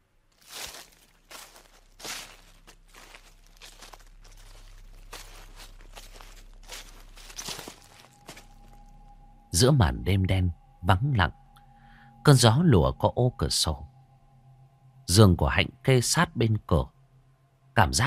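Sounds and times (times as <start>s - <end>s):
faint low hum: 0.0s - 18.0s
footsteps rustling through a garden at night: 0.2s - 9.0s
speech: 9.6s - 11.4s, 12.2s - 13.9s, 15.1s - 17.0s, 17.8s - 18.0s.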